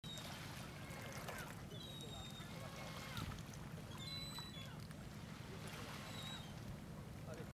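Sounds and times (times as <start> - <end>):
waves: 0.0 - 7.5
gulls calling: 0.1 - 4.9, 5.9 - 6.6.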